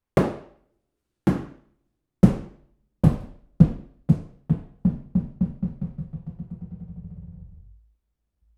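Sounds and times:
solid rubber ball bouncing: 0:02.2 - 0:07.1.

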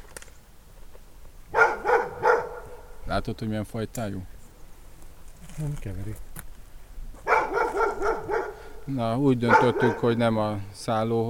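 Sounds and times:
dog barking sharp and agitated: 0:01.5 - 0:03.0, 0:07.2 - 0:08.8, 0:09.4 - 0:10.2
speech: 0:03.1 - 0:04.4, 0:05.6 - 0:06.3, 0:08.9 - 0:11.2.

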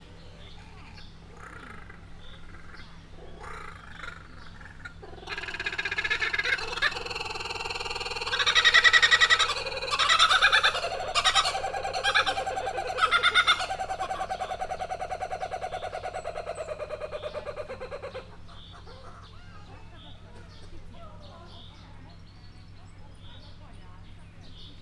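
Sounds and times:
two kookaburras calling: 0:00.0 - 0:24.8.

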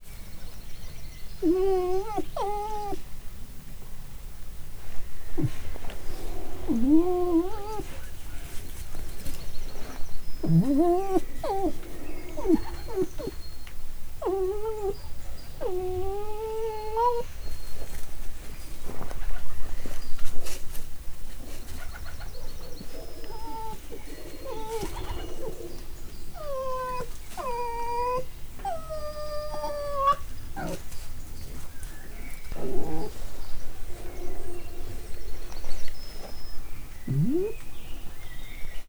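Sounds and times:
red fox whimpering for petting at Miskolc zoo: 0:01.4 - 0:03.0, 0:05.4 - 0:05.6, 0:06.2 - 0:08.1, 0:10.4 - 0:13.5, 0:14.2 - 0:17.3, 0:22.9 - 0:30.9, 0:32.5 - 0:33.3, 0:37.1 - 0:37.6.

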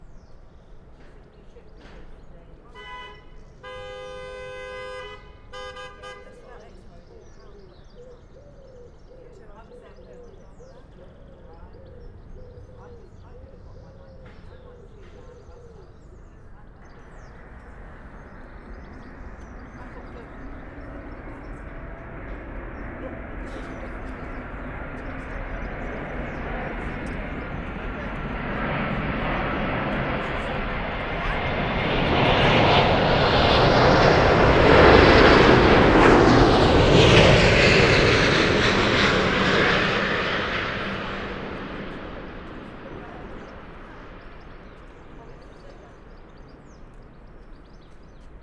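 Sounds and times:
noisy plane landing: 0:00.0 - 0:48.4
car horn honking: 0:02.7 - 0:06.5.

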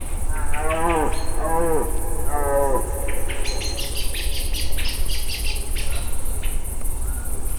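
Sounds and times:
red deer calling in nature: 0:00.0 - 0:05.7
bird calling in nature: 0:00.0 - 0:07.4.

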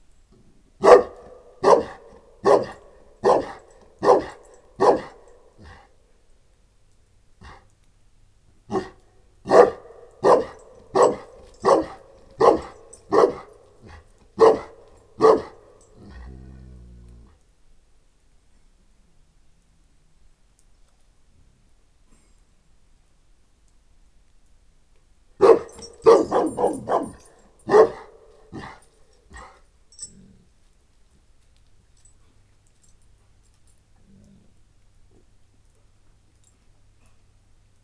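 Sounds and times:
Saint Bernard and Moscow Watchdog mix dog at a farmyard: 0:00.8 - 0:05.9, 0:07.4 - 0:07.7, 0:08.7 - 0:17.3, 0:25.4 - 0:30.5.

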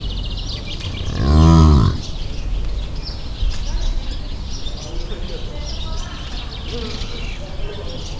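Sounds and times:
scimitar-horned oryx at Debrecen zoo recorded with a Marantz recorder: 0:00.0 - 0:02.1.

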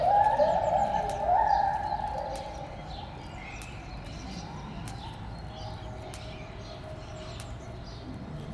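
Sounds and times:
white-handed gibbon song with rising hoots and quavering trill: 0:00.0 - 0:02.7.

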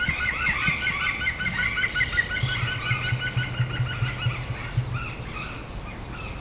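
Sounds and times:
emu drumming in Debrecen zoo: 0:00.0 - 0:05.9
European green woodpecker calling in Debrecen zoo: 0:00.0 - 0:06.3.

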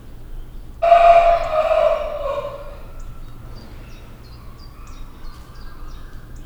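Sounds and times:
golden-bellied mangabey in a zoo monkey house: 0:00.8 - 0:03.8.

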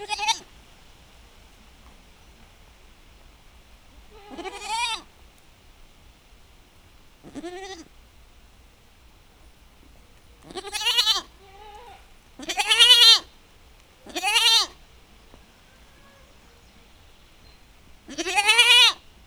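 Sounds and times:
domestic goat bleating in a farmyard: 0:00.0 - 0:00.5, 0:04.1 - 0:05.1, 0:07.2 - 0:07.9, 0:10.4 - 0:13.3, 0:14.0 - 0:14.8, 0:18.0 - 0:19.0.

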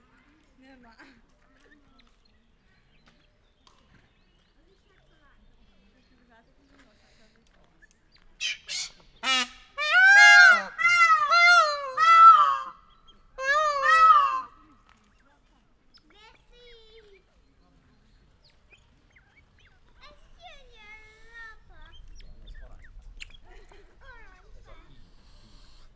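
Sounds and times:
peacock screeching in a zoo: 0:08.4 - 0:12.8, 0:13.4 - 0:14.6.

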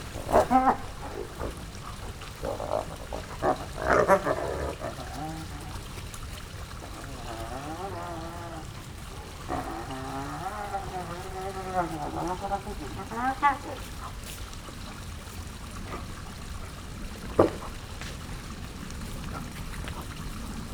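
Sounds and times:
spotted hyenas playing with each other in the evening at a zoo: 0:00.0 - 0:14.7, 0:17.2 - 0:20.6.

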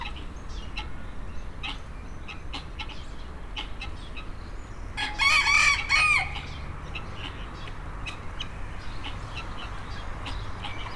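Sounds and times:
rooster crowing in the farmyard section of a zoo in Nyíregyháza Hungary: 0:05.0 - 0:06.5.

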